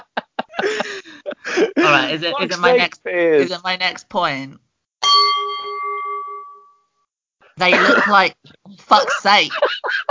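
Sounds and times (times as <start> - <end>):
laughter: 0.0 - 3.5, 7.7 - 8.1, 8.9 - 10.0
speech: 1.6 - 4.6, 7.6 - 10.0
single bell struck with bright metallic tone: 5.0 - 6.9.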